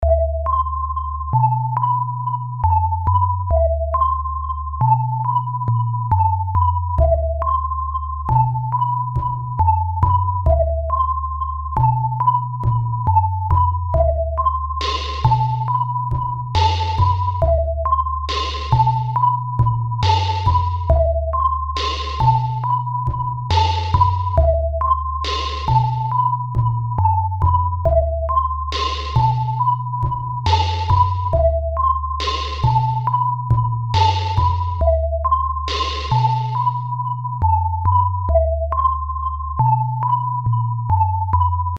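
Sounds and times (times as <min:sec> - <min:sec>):
sine wave beat: 0:00.0 - 0:41.7.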